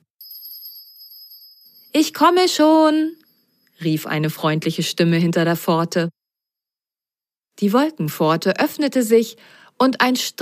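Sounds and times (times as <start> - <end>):
bright high bell ringing with a rapid shimmering trill: 0.1 - 4.4
speech: 2.0 - 3.2, 3.8 - 6.2, 7.6 - 10.4.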